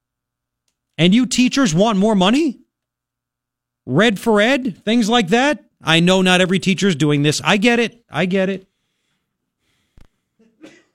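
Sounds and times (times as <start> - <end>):
speech: 1.0 - 2.6, 3.9 - 8.7
quiet sneeze: 10.5 - 10.9.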